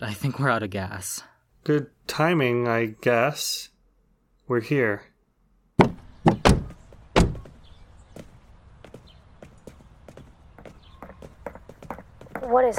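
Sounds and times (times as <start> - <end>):
speech: 0.0 - 3.7, 4.5 - 5.1, 12.5 - 12.7
sharp mechanical clunks of a door being locked: 5.8 - 7.5.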